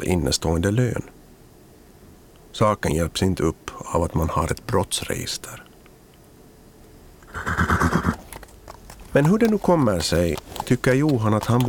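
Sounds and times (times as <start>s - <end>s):
speech: 0.0s - 1.2s, 2.6s - 5.6s, 9.2s - 11.6s
horse whinnying: 7.2s - 8.5s
horse hoof clops: 7.3s - 11.6s.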